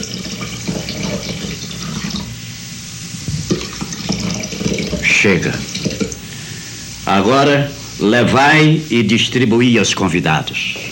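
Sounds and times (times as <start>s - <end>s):
water pouring into heavy stone jars: 0.0s - 2.4s, 3.1s - 6.6s
speech: 5.2s - 6.0s, 7.1s - 10.8s.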